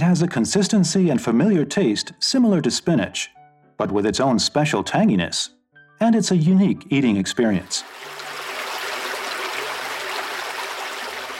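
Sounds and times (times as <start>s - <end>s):
speech: 0.0s - 8.2s
stream water flowing: 7.7s - 11.3s.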